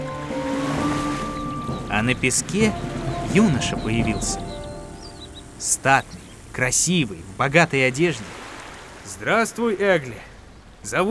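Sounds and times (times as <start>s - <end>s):
steady sustained humming tones: 0.0s - 8.1s
sea waves surging and receding from shore: 0.0s - 10.9s
speech: 2.0s - 4.4s, 5.6s - 8.4s, 9.1s - 11.0s.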